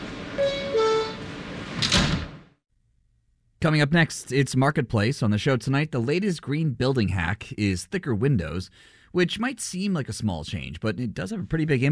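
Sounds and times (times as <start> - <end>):
subway train doors sliding shut with a hissing rush and thud: 0.0 - 2.5
subway train two-tone descending door chime: 0.4 - 1.3
speech: 3.6 - 11.9.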